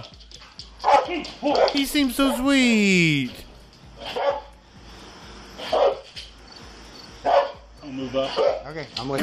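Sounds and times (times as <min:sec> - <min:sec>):
dog barking: 0:00.8 - 0:01.8, 0:04.0 - 0:04.5, 0:05.6 - 0:06.1, 0:07.2 - 0:08.6
speech: 0:01.1 - 0:03.4, 0:08.0 - 0:09.2.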